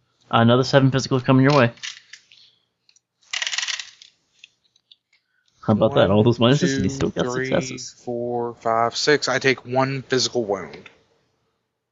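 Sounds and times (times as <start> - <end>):
speech: 0.3 - 1.9, 5.7 - 11.0
two dice tumbling across a hard table: 1.5 - 2.4, 3.3 - 4.6.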